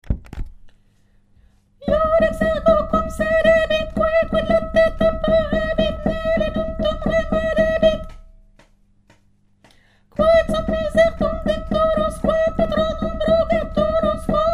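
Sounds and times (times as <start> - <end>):
soprano singing: 1.8 - 8.2, 10.2 - 14.5.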